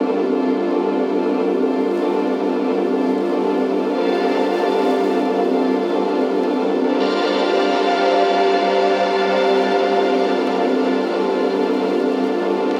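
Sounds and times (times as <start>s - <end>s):
synth pad loop in G minor: 0.1s - 12.7s.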